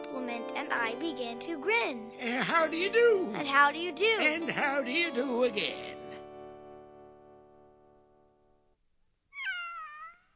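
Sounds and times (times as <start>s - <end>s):
speech: 0.6s - 6.0s
little gray kitten meowing: 9.4s - 10.3s.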